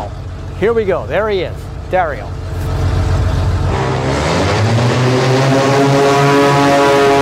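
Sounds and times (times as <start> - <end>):
racing propeller plane engine roaring through a tunnel: 0.0 - 7.1
speech: 0.6 - 2.4.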